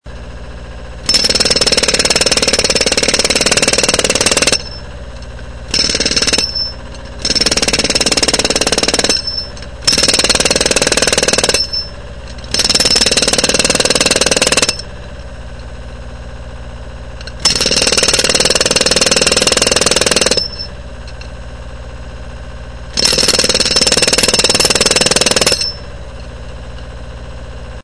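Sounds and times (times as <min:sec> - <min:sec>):
jackhammer: 0:01.0 - 0:04.9, 0:05.7 - 0:15.0, 0:17.3 - 0:20.8, 0:22.9 - 0:25.9.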